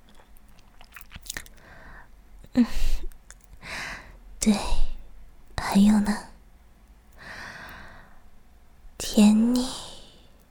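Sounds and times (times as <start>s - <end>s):
wet mouth and swallowing sounds after choking on a drink: 0.0s - 1.7s
speech: 2.6s - 2.8s, 4.4s - 4.8s, 5.8s - 6.3s.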